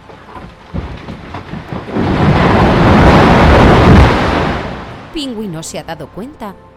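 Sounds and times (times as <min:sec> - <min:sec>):
glacier ice breaking away and crashing into the sea: 0:00.6 - 0:05.1
speech: 0:05.2 - 0:06.7.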